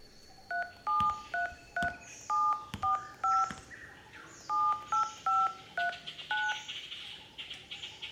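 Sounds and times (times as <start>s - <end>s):
cell phone keypad dual-tone dialing beeps: 0.4s - 3.7s, 4.5s - 6.6s.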